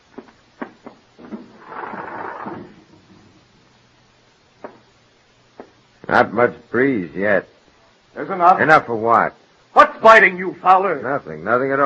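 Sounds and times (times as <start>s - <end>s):
window being opened: 1.2s - 2.8s
speech: 6.1s - 7.5s, 8.2s - 9.4s, 10.0s - 11.8s.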